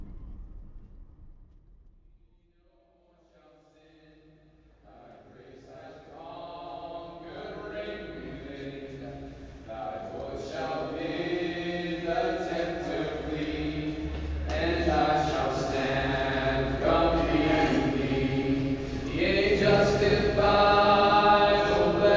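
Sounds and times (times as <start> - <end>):
layered voices outdoors in Kenya: 4.9 - 22.1.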